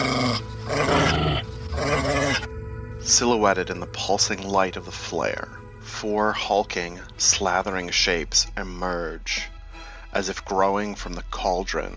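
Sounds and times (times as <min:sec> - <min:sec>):
low rumbling menacing creature growl: 0:00.0 - 0:02.5
speech: 0:03.1 - 0:09.5, 0:10.1 - 0:11.9.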